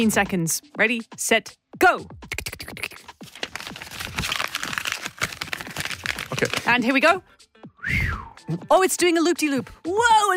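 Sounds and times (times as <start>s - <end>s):
speech: 0.0s - 3.0s, 6.4s - 10.3s
paper crinkling and rustling as a sheet is folded into a paper airplane: 3.2s - 6.7s.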